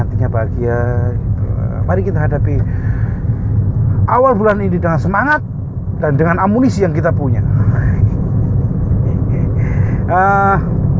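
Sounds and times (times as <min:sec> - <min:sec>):
low engine rumble inside a moving car: 0:00.0 - 0:10.9
road noise inside a moving car: 0:00.0 - 0:10.9
speech: 0:00.2 - 0:02.8, 0:04.1 - 0:07.7, 0:10.1 - 0:10.8.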